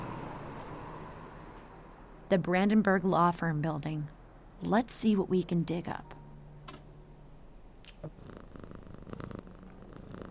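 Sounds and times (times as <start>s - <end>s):
speech: 2.3s - 6.2s
cat purring softly: 8.0s - 10.2s.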